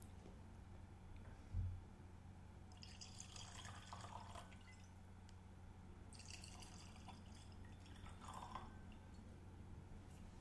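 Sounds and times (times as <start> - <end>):
low hum: 0.0 - 10.3
liquid pouring from a bottle into a glass: 2.7 - 4.9, 6.1 - 9.1.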